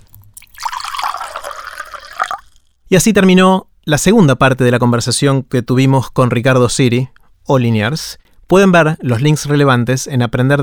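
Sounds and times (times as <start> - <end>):
water pouring into a glass: 0.1 - 2.8
speech: 2.9 - 10.6.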